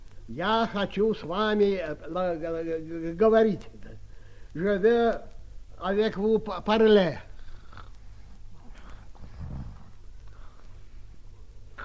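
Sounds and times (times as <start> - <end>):
speech: 0.3 - 7.3
heavier snort-like breath: 8.6 - 10.7.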